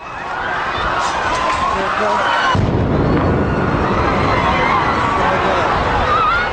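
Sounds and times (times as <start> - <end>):
dense crowd shouting and chatter near a marathon finish line: 0.0 - 6.5
explosion blast near a marathon finish line: 2.5 - 6.5.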